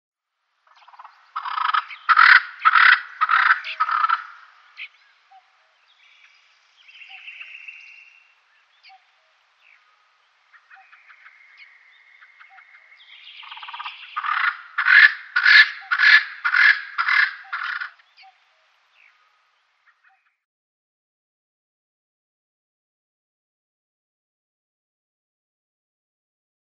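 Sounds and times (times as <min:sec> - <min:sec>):
male Double-spurred Francolin display call: 0:00.6 - 0:20.4.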